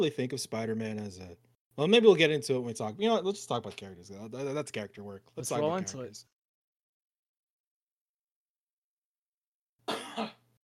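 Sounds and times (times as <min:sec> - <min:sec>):
speech: 0:00.0 - 0:06.4, 0:10.2 - 0:10.4
person coughing: 0:09.9 - 0:10.5.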